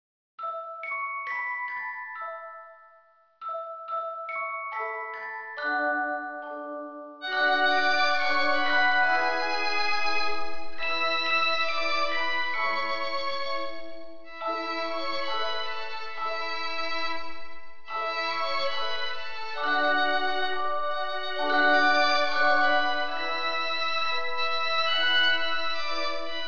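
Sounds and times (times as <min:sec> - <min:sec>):
music: 0:00.4 - 0:26.4.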